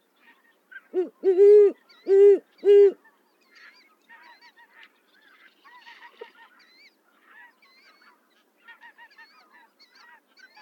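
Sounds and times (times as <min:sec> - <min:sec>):
owl hooting: 0:00.9 - 0:03.0.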